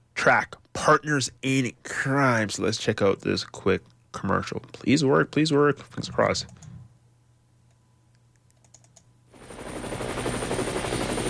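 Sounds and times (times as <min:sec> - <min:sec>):
speech: 0:00.2 - 0:06.7
traffic helicopter rotor chopping: 0:09.4 - 0:11.2.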